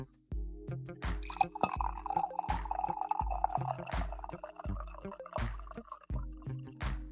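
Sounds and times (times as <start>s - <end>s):
coffee pouring into a cup: 1.2s - 6.7s.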